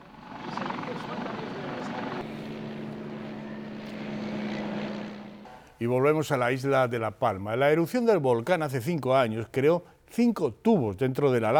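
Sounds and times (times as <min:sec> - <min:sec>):
sustained droning engine tone: 0:00.0 - 0:05.6
aircraft roaring overhead at an air show: 0:00.0 - 0:05.7
speech: 0:05.8 - 0:11.5.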